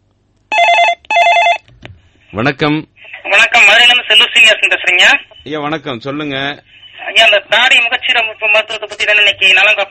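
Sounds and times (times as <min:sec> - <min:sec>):
telephone ringing with an incoming call: 0:00.5 - 0:01.6
speech: 0:02.4 - 0:09.8.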